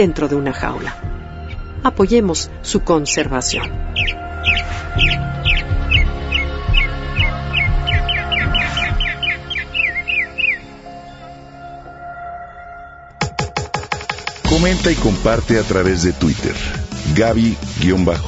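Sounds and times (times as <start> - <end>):
speech: 0.0 - 1.2, 1.8 - 5.3, 14.6 - 18.2
wild birdsong with high bright chirps: 2.7 - 11.9.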